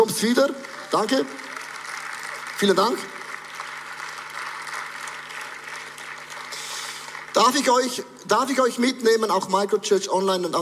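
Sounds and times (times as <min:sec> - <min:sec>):
audience applause: 0:00.0 - 0:08.0
speech: 0:00.2 - 0:01.4, 0:02.6 - 0:03.2, 0:07.4 - 0:10.6.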